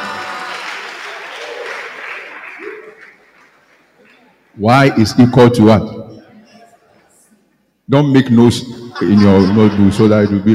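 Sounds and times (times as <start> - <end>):
congregation clapping: 0.0 - 4.6
speech: 4.6 - 6.0, 7.9 - 10.5
laughter: 8.8 - 10.5.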